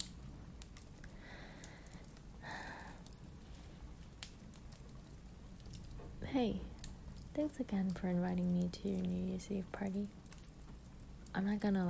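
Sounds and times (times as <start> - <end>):
electric fireplace crackling in an apartment: 0.0 - 11.8
low steady hum: 0.0 - 11.8
speech: 6.3 - 6.7, 7.4 - 10.2, 11.4 - 11.8.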